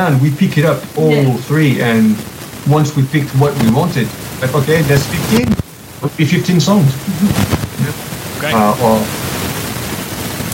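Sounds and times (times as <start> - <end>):
speech: 0.0 - 7.6, 8.4 - 9.2
loud white noise hiss on the line: 0.0 - 10.5.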